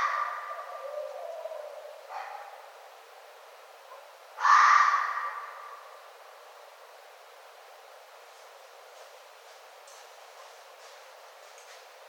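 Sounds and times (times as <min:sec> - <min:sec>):
red fox barking: 0:00.0 - 0:02.7, 0:03.9 - 0:06.0.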